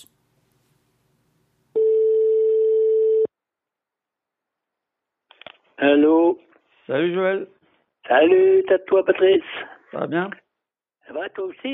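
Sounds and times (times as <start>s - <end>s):
telephone ringback tone while a call is placed: 1.8s - 3.3s
speech: 5.8s - 10.4s, 11.1s - 11.7s.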